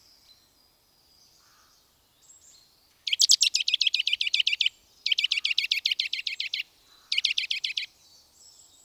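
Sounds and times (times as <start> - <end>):
Eurasian nuthatch Sitta europaea giving trilled piping bursts: 3.1 - 7.9.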